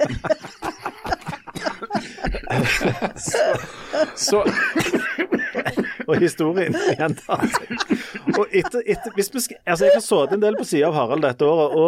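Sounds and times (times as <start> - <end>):
speech: 0.0 - 0.4, 2.5 - 11.8
person in a violent coughing fit: 0.0 - 9.2
laughter: 0.0 - 11.8
rough throaty breaths: 1.6 - 4.2, 6.7 - 8.6.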